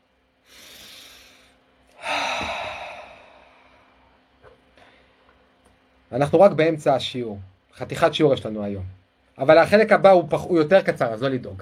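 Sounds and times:
slow deep breath taken in: 0.4s - 4.2s, 4.8s - 5.3s
speech: 6.1s - 11.6s.

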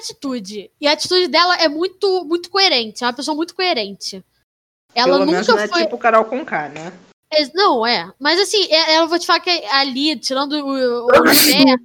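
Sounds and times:
speech: 0.0s - 4.3s, 4.9s - 11.8s
man laughing: 11.1s - 11.7s
sharp sneeze: 11.1s - 11.7s.

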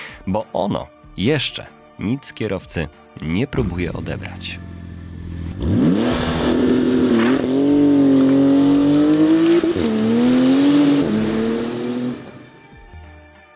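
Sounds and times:
speech: 0.2s - 4.7s
Maserati GranTurismo sports car engine revving: 4.6s - 12.5s.

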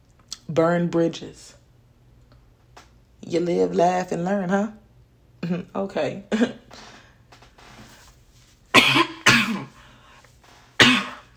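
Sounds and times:
faint room noise: 0.0s - 11.3s
speech: 0.5s - 1.6s, 3.3s - 4.8s, 5.4s - 6.9s
person coughing: 6.3s - 6.7s, 8.7s - 9.9s, 10.8s - 11.3s.

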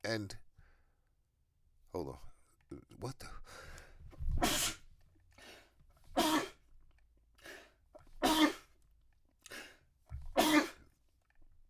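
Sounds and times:
speech: 0.0s - 0.4s, 1.9s - 3.7s
loud explosive sneezes: 4.4s - 4.8s, 6.2s - 6.6s, 8.2s - 8.8s, 10.3s - 10.8s.

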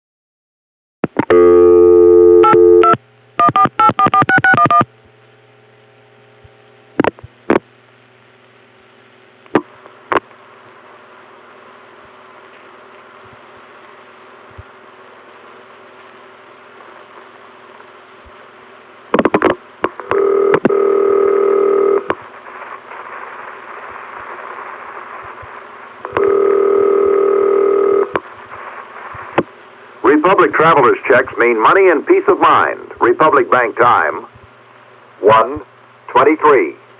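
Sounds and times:
telephone signalling tones on a private line: 1.3s - 4.9s, 20.0s - 22.1s, 26.1s - 28.1s
low hiss: 1.4s - 36.9s
speech: 30.3s - 34.3s, 35.3s - 35.6s, 36.3s - 36.8s.

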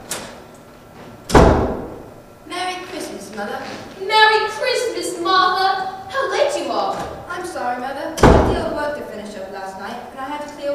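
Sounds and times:
door swinging and thudding: 1.3s - 2.1s, 8.2s - 8.8s
speech: 3.4s - 10.7s.

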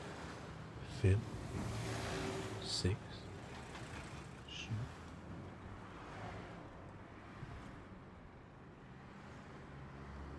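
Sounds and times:
evening road traffic with cars passing: 0.0s - 10.3s
speech: 1.0s - 1.8s, 2.7s - 3.3s.

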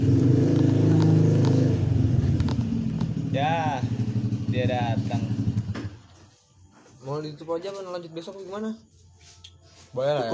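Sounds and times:
motorcycle engine passing by: 0.0s - 6.3s
speech: 4.6s - 5.3s, 7.1s - 9.4s, 10.0s - 10.3s.

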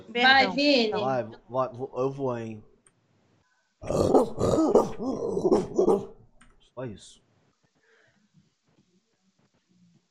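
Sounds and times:
speech: 0.2s - 2.7s, 3.8s - 6.2s, 6.8s - 7.2s
man imitating a dog barking: 3.8s - 6.1s.

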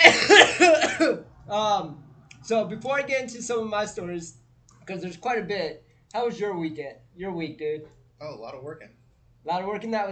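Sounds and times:
raspy coughs from a person getting over a cold: 0.0s - 1.2s
speech: 1.5s - 10.0s.

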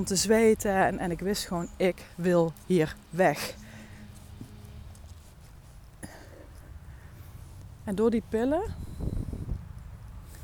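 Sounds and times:
speech: 0.0s - 3.6s, 7.9s - 8.9s
horse hooves clip-clopping: 0.0s - 8.1s
outdoor noise: 0.0s - 10.4s.

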